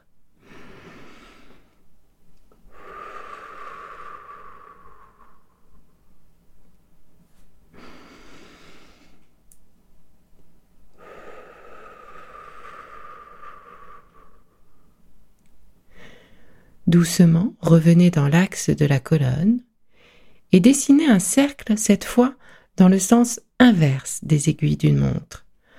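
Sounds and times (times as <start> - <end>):
slow airy breathing in and out during a head-circling exercise: 0.3 - 2.0, 2.6 - 6.3, 7.7 - 9.4, 10.9 - 15.1, 15.8 - 16.8, 19.8 - 20.5, 25.6 - 25.7
speech: 16.9 - 19.7, 20.5 - 25.4.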